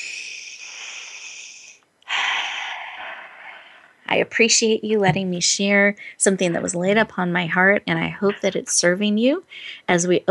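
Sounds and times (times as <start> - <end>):
deep breaths with a faint whistle: 0.0 - 4.1
speech: 4.1 - 10.2.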